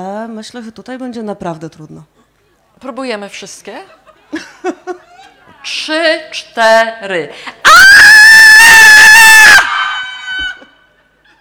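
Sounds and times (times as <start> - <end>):
speech: 0.0 - 7.8
laughter: 3.9 - 5.5
group of women screaming together, high-pitched: 7.7 - 10.7.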